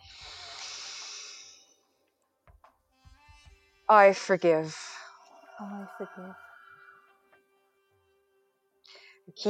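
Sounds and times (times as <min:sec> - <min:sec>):
person inhaling deeply during a breathing exercise: 0:00.0 - 0:01.7
speech: 0:03.9 - 0:04.9, 0:05.6 - 0:06.5, 0:09.3 - 0:09.4.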